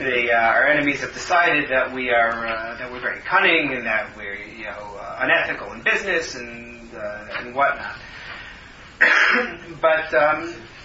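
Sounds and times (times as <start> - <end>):
speech: 0.0 - 8.2, 9.0 - 10.7
person coughing harshly: 9.0 - 9.7.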